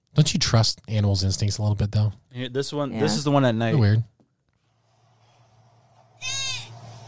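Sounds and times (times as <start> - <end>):
speech: 0.2 - 4.1
goat bleating at night: 6.2 - 6.7.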